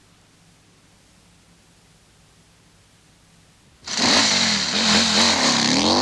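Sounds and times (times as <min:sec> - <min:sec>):
motorcycle engine revving: 0:03.8 - 0:06.0.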